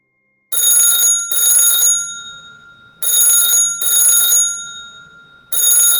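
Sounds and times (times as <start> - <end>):
classic bell telephone ringing in a house at night: 0.5 - 5.9.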